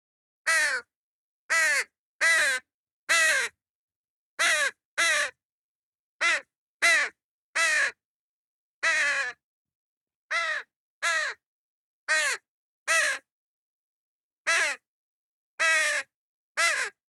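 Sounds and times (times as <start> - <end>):
crow giving raspy caws: 0.5 - 0.9, 1.5 - 3.6, 4.4 - 5.4, 6.2 - 8.0, 8.8 - 9.4, 10.3 - 11.4, 12.1 - 13.3, 14.5 - 14.8, 15.6 - 17.0.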